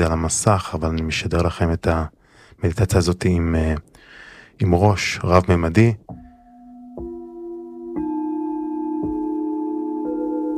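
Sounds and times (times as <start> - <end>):
speech: 0.0 - 3.9, 4.6 - 6.1
Tibetan singing bowls struck and ringing: 6.2 - 10.5.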